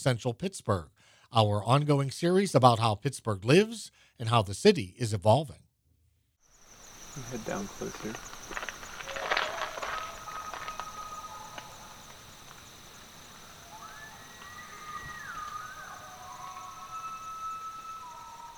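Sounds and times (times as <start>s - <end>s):
speech: 0.0s - 5.6s, 7.2s - 8.3s
steady hiss: 6.4s - 18.5s
wild Pennsylvania elk bull bugling mating call: 7.0s - 18.5s.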